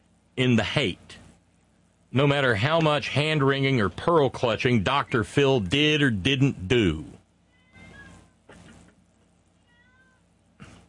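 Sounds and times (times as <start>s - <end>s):
speech: 0.4s - 1.2s, 2.1s - 7.2s
cat meowing: 7.5s - 8.6s, 9.6s - 10.3s.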